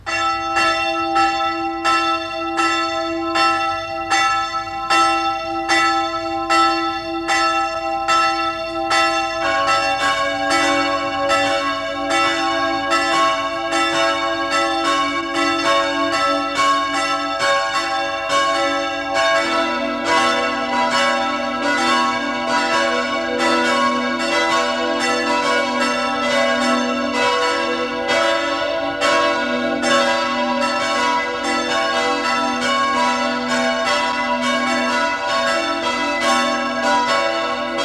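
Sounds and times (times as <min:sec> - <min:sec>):
parish church bells ringing at noon: 0:00.0 - 0:37.8.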